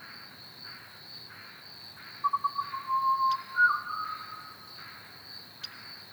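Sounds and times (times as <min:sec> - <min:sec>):
Pied butcherbird singing clear fluty whistled notes at Ormiston Gorge: 0:02.3 - 0:04.2.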